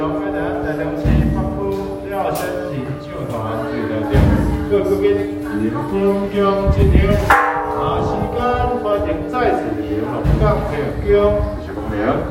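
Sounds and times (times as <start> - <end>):
garbage truck bells ringing: 0.0 - 11.6
man making a loudspeaker announcement: 0.0 - 12.3
steady low tone: 0.0 - 12.3
thumping drum-like hits: 1.0 - 2.0, 4.1 - 4.9, 7.0 - 11.2
sharp bell strikes: 7.3 - 10.4.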